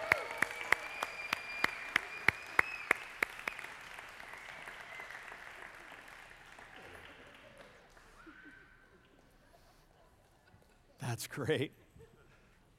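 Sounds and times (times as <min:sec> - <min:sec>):
audience cheering for the kids: 0:00.0 - 0:05.5
church congregation applauding for the children: 0:00.0 - 0:08.2
speech: 0:11.2 - 0:11.8.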